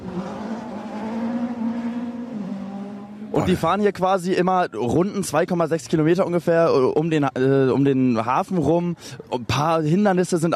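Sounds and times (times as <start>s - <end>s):
Peugeot 206 race car engine roaring: 0.0s - 4.0s
speech: 3.4s - 10.5s.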